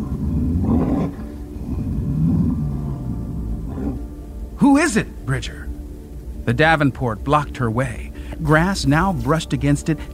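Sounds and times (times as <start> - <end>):
deep guttural animal roar: 0.0 - 4.2
speech: 4.8 - 5.7, 6.4 - 10.1.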